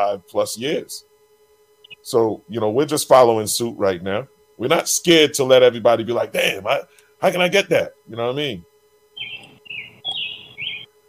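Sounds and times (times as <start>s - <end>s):
speech: 0.0s - 1.1s, 2.0s - 8.7s
birds chirping outdoors: 1.8s - 2.1s, 9.1s - 10.9s.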